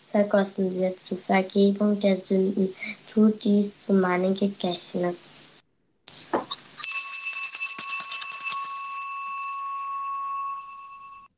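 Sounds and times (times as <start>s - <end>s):
speech: 0.1s - 5.4s, 6.1s - 6.5s
cluster of small church altar bells shaken at consecration: 6.5s - 11.3s.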